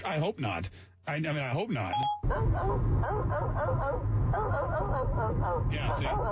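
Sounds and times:
low hum: 0.0 - 6.2
speech: 0.0 - 6.2
dog barking and yipping in high-pitched bursts: 2.2 - 6.2.

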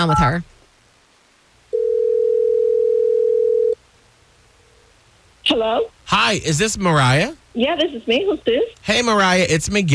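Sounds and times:
speech: 0.0 - 0.6, 5.5 - 9.9
steady telephone ringing tone as a phone call is placed: 1.7 - 3.8.

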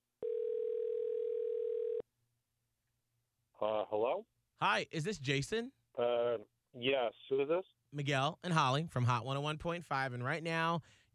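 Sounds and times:
telephone dial tone: 0.2 - 2.0
speech: 3.6 - 11.0.

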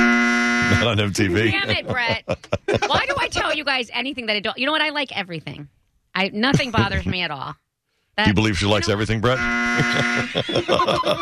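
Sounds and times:
loud harsh game show buzzer: 0.0 - 2.1, 8.3 - 11.1
laughter: 0.6 - 3.7, 6.5 - 7.2, 8.3 - 11.1
speech: 0.7 - 7.6, 8.2 - 11.1.

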